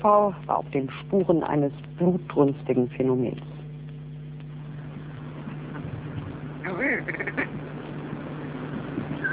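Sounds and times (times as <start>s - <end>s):
speech: 0.0s - 3.6s
low steady hum: 0.0s - 9.3s
fleeing Scottish red grouse Lagopus lagopus croaking during a hunt in Münsterland: 6.6s - 7.6s.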